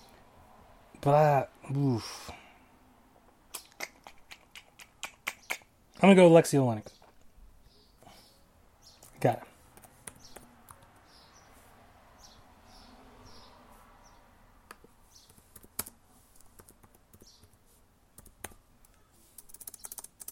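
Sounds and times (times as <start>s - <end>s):
speech: 1.0s - 2.4s, 6.0s - 7.0s, 9.2s - 9.5s
typing on a computer keyboard: 15.2s - 17.6s, 18.2s - 20.3s.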